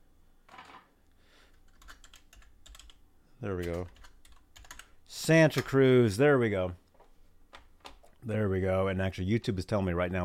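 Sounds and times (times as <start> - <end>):
low hum: 0.0 - 10.2
computer keyboard typing: 1.6 - 3.0, 3.6 - 5.8
speech: 3.4 - 4.0, 5.3 - 6.8, 8.2 - 10.2.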